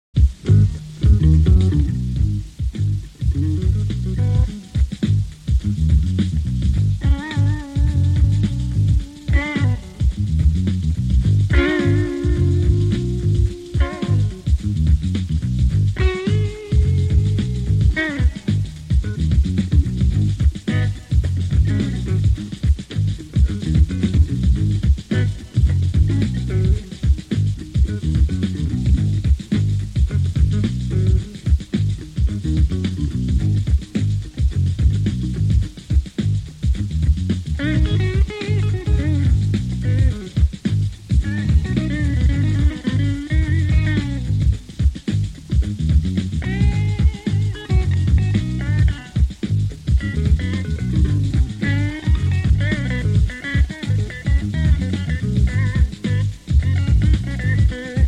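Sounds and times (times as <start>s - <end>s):
funky blues jam: 0.1s - 58.0s.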